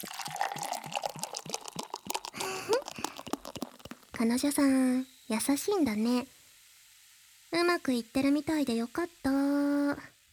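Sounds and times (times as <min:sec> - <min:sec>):
drink pouring into a glass: 0:00.0 - 0:04.2
clicks and crunchy ticks: 0:01.4 - 0:04.2
speech: 0:04.2 - 0:06.4, 0:07.5 - 0:10.1.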